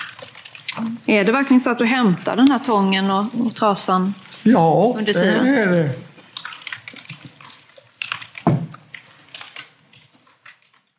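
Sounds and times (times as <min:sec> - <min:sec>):
running water splashing and trickling: 0:00.0 - 0:10.9
speech: 0:00.8 - 0:06.1
person speaking on an emergency phone call: 0:04.4 - 0:06.1.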